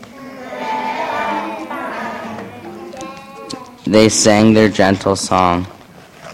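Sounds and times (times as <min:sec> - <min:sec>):
several goats bleating: 0:00.1 - 0:04.1
speech: 0:03.9 - 0:05.8.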